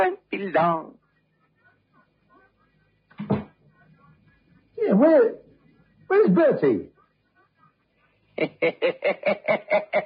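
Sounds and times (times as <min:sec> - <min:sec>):
speech: 0:00.4 - 0:01.0, 0:04.8 - 0:05.4, 0:06.1 - 0:06.9, 0:08.4 - 0:10.0
backstage dressing-room door swinging shut with a solid thud: 0:03.2 - 0:03.5
laughter: 0:08.4 - 0:10.0.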